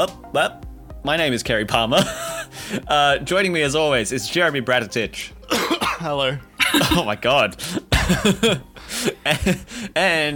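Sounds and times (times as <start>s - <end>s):
speech: 0.0s - 10.3s
person clearing throat of a coffee grain: 5.4s - 7.1s, 7.7s - 8.7s
raspy throaty coughs from a coffee grain stuck in the throat: 5.4s - 9.7s.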